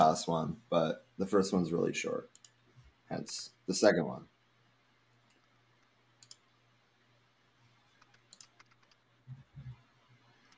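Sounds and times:
speech: 0:00.0 - 0:02.4, 0:03.1 - 0:04.3
typing on a computer keyboard: 0:06.2 - 0:06.4, 0:07.9 - 0:09.0.

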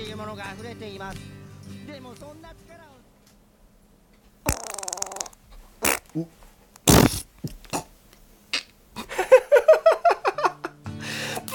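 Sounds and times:
speech: 0:00.0 - 0:03.0, 0:06.1 - 0:06.4
mouth fart imitating flatulence: 0:04.4 - 0:07.9, 0:08.5 - 0:08.8
laughter: 0:09.0 - 0:10.8.

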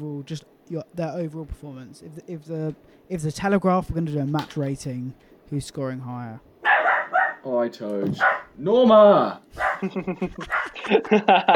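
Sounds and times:
speech: 0:00.0 - 0:06.5, 0:07.4 - 0:11.5
dog barking in short sharp yaps: 0:06.6 - 0:07.4, 0:08.2 - 0:08.6, 0:09.6 - 0:10.9
laughter: 0:09.8 - 0:11.5.

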